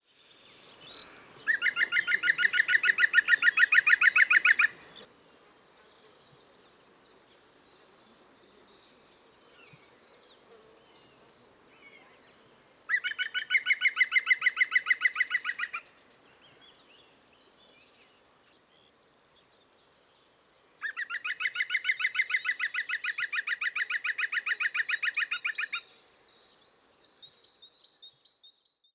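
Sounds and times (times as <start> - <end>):
green woodpecker Picus viridis calling: 1.0 - 5.1, 12.9 - 15.8, 20.8 - 25.8.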